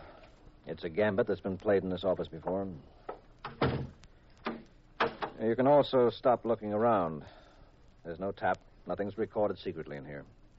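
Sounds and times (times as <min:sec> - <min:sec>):
speech: 0:00.7 - 0:03.1, 0:05.4 - 0:07.4, 0:08.0 - 0:10.4
office door shutting: 0:03.4 - 0:05.4.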